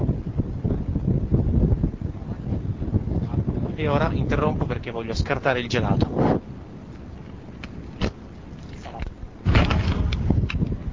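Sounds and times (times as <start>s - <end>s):
strong wind buffeting the microphone: 0.0s - 10.9s
speech: 3.8s - 6.4s.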